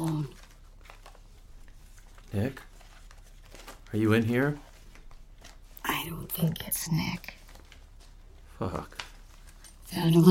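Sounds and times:
papers rustling inside a satchel: 0.0 - 10.3
speech: 2.3 - 2.7, 3.9 - 4.7, 6.0 - 7.4, 8.6 - 9.1, 9.9 - 10.3.

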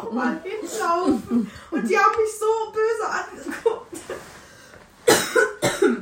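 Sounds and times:
speech: 0.1 - 3.5
person coughing: 5.1 - 6.0.

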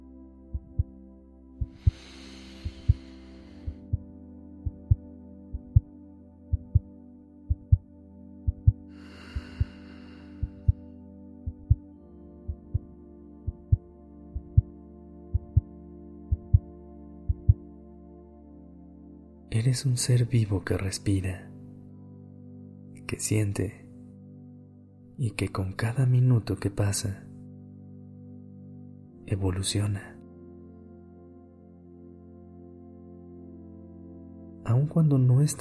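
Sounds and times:
heartbeat thumping in double pulses: 0.5 - 1.0, 1.6 - 3.1, 3.7 - 5.9, 6.5 - 6.9, 7.5 - 7.9, 8.5 - 8.8, 9.4 - 9.8, 10.4 - 10.8, 11.4 - 11.9, 12.5 - 12.9, 13.5 - 13.8, 14.4 - 14.7, 15.3 - 15.7, 16.3 - 16.7, 17.3 - 17.6
speech: 19.6 - 21.5, 23.1 - 23.8, 25.2 - 27.3, 29.3 - 30.1, 34.8 - 35.5.

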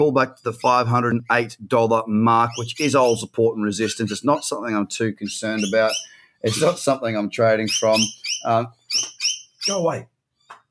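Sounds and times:
speech: 0.0 - 10.1
Australian bird, likely a lorikeet, squawking: 2.4 - 3.3, 3.9 - 9.9.

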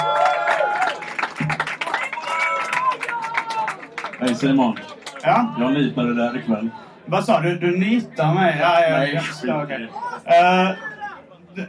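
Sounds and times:
cheering voices and whoops: 0.0 - 3.9
crowd clapping: 0.0 - 5.6
speech: 4.2 - 10.8.

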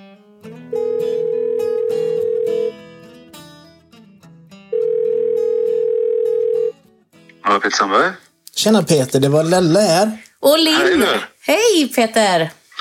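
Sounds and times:
continuous musical background: 0.0 - 10.1
ringback tone of an outgoing telephone call: 0.7 - 2.8, 4.7 - 6.7
speech: 7.6 - 12.6.

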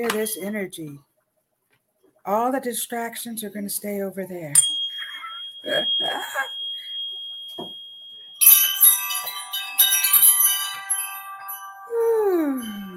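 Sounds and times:
speech: 0.0 - 1.1, 2.2 - 4.7, 5.6 - 6.6
wind chimes ringing: 4.6 - 12.9.

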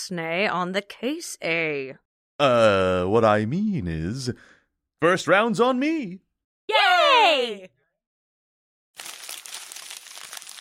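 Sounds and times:
speech: 0.0 - 7.8
crumpled piece of paper crinkling on the floor being handled: 9.0 - 10.5.

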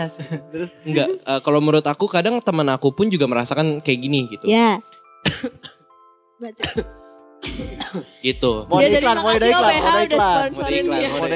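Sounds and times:
speech: 0.0 - 5.8, 6.4 - 11.3
harsh coughs: 5.2 - 5.9, 6.6 - 8.3.

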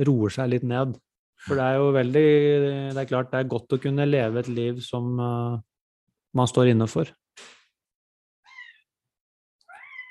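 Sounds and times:
speech: 0.0 - 5.7, 6.3 - 7.6
cat meowing: 8.5 - 8.8, 9.6 - 10.0.

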